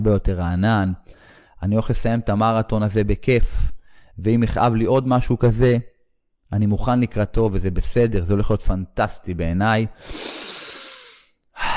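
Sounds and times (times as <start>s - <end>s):
speech: 0.0s - 5.9s, 6.5s - 10.5s
man running a marathon breathing in deeply: 1.0s - 1.6s, 10.0s - 11.7s
strong exhale of a man running a marathon: 10.0s - 11.7s.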